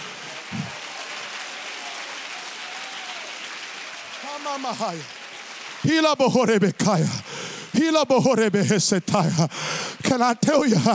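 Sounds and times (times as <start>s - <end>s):
dense applause from a large crowd: 0.0s - 10.9s
speech: 4.4s - 5.2s, 5.8s - 10.9s.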